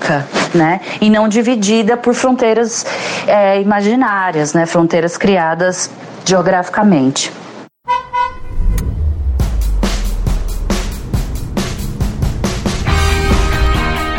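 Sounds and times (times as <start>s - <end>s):
speech: 0.1s - 7.4s
car horn tooting: 7.8s - 8.8s
loud steady rhythmic thumping with heavy low rumble: 8.6s - 14.1s.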